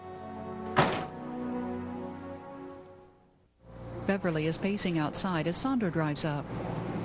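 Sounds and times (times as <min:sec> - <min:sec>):
door closing with a dull thunk: 0:00.6 - 0:01.2
speech: 0:04.0 - 0:06.9.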